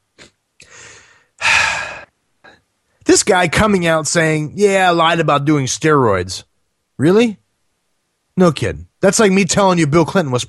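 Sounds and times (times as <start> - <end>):
deep breath: 0.6 - 3.0
speech: 3.1 - 7.4, 8.4 - 10.4.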